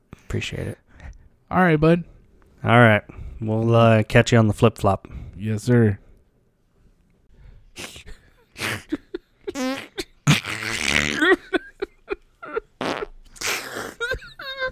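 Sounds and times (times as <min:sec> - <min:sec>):
speech: 0:00.3 - 0:00.8, 0:01.5 - 0:06.0
farts: 0:09.5 - 0:11.3, 0:12.8 - 0:14.0.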